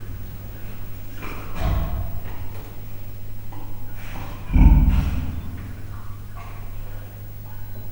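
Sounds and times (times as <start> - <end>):
Bengal tiger snoring softly: 3.9 - 7.0.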